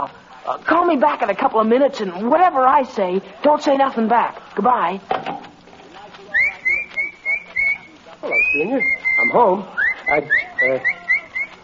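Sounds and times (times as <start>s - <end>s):
speech: 0.0s - 5.4s, 8.2s - 11.0s
person whistling short rising notes: 6.4s - 11.6s.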